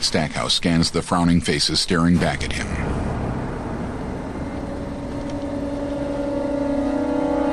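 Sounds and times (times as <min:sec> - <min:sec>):
speech: 0:00.1 - 0:02.9
commander's SUV engine droning while driving up: 0:02.7 - 0:07.5.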